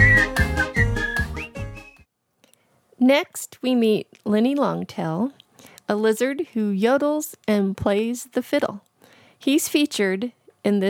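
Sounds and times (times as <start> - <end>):
whistled tune: 0.0 - 2.1
speech: 3.1 - 10.8.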